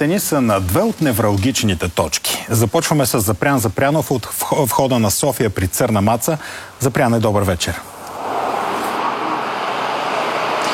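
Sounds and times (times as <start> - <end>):
speech: 0.0 - 8.0
heavy motorway traffic of passing cars: 7.8 - 10.7.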